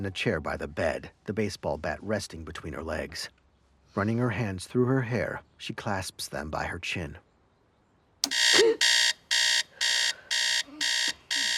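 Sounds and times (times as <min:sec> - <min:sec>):
speech: 0:00.0 - 0:07.3
radio alarm clock alarm beeping: 0:08.2 - 0:11.5.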